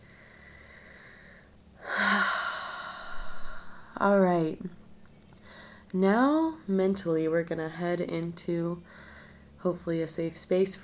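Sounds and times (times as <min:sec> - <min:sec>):
long breathy exhale after a deep inhale during a breathing exercise: 0:00.0 - 0:04.0
speech: 0:04.0 - 0:04.8, 0:05.9 - 0:10.8.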